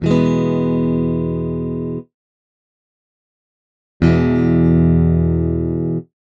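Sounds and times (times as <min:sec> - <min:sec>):
guitar: 0:00.0 - 0:02.2, 0:04.0 - 0:06.2.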